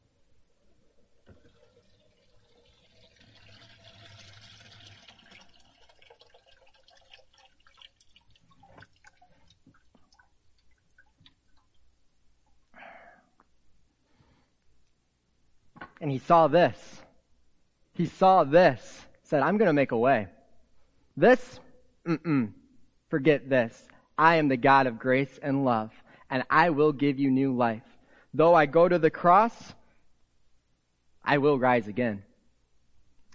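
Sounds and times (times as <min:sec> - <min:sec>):
water gurgling and trickling while draining: 0:00.1 - 0:12.1
speech: 0:16.0 - 0:17.0, 0:18.0 - 0:20.4, 0:21.2 - 0:29.8, 0:31.2 - 0:32.3.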